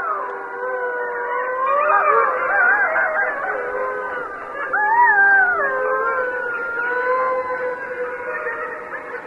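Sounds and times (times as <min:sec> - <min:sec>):
Mexican wolves howling together: 0:00.0 - 0:09.2.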